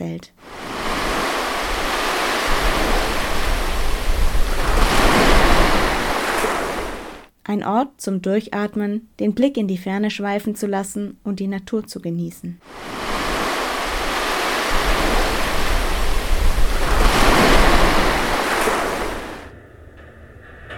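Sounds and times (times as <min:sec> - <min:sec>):
speech: 0:00.0 - 0:00.5, 0:07.5 - 0:13.0
ocean waves crashing on the shore: 0:00.4 - 0:07.3, 0:12.6 - 0:19.5.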